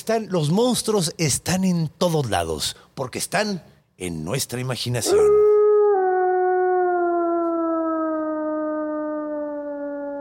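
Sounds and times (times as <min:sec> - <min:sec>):
speech: 0:00.0 - 0:05.5
wolf howling: 0:05.0 - 0:10.1.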